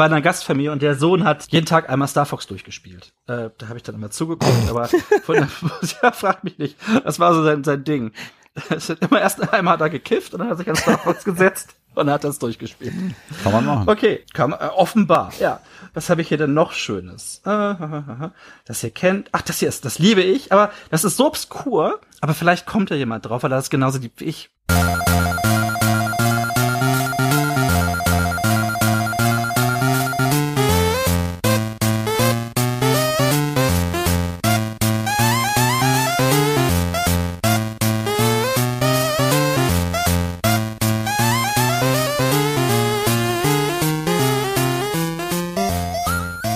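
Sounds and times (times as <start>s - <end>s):
speech: 0.0s - 25.0s
laughter: 4.4s - 6.5s, 10.7s - 11.3s
chiptune pause-screen music of a Game Boy game: 24.7s - 46.5s.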